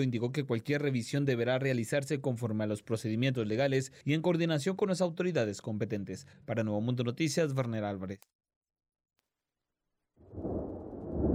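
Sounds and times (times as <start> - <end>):
speech: 0.0 - 8.4
deep rolling thunder: 10.2 - 11.3.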